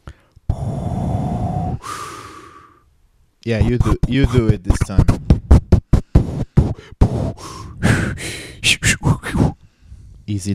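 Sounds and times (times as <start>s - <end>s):
person imitating heavy respirator breathing: 0.0s - 2.9s, 3.6s - 9.7s
breathy sniffs: 0.5s - 2.8s, 5.9s - 10.2s
speech: 3.4s - 5.3s, 10.3s - 10.5s.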